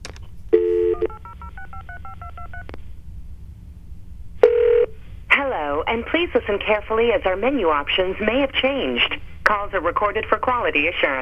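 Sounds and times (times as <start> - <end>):
telephone keypad dialing tones as a toll-free number is entered: 0.6 - 2.8
speech: 5.5 - 11.2.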